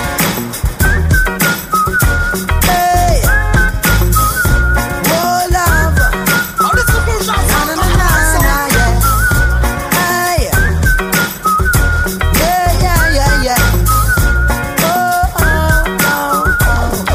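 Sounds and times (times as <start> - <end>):
loud music track with heavy bass and drums: 0.0 - 17.1
person whistling a bright sliding melody: 0.8 - 17.1.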